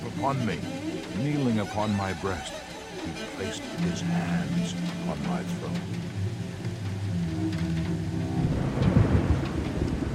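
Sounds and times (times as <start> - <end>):
hail: 0.0 - 10.1
rain hissing: 0.0 - 10.1
wind: 0.0 - 10.1
speech: 0.2 - 6.2
deep rolling thunder over a city: 8.0 - 10.1.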